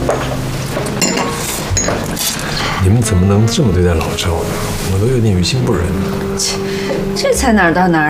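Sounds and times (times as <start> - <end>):
glasses clinking in a toast: 0.1 - 2.8
speech: 2.9 - 8.0.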